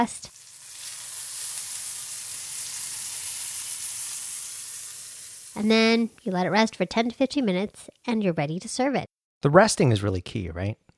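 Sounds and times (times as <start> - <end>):
speech: 0.0 - 0.4, 5.6 - 10.8
steak searing in a hot cast iron skillet slicked with ghee: 0.0 - 6.4.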